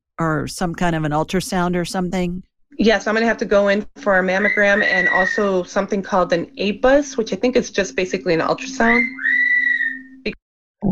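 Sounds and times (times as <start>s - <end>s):
speech: 0.2s - 9.4s, 10.2s - 10.9s
pet bird whistling: 4.4s - 5.6s, 8.8s - 10.2s.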